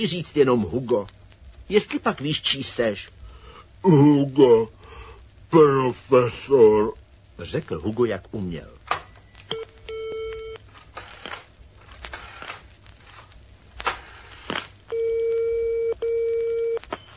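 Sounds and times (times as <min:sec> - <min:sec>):
speech: 0:00.0 - 0:03.2, 0:03.8 - 0:04.8, 0:05.5 - 0:08.8
faint telephone line clicks and crackles: 0:00.0 - 0:17.1
telephone ringing tone over the line: 0:14.9 - 0:17.1.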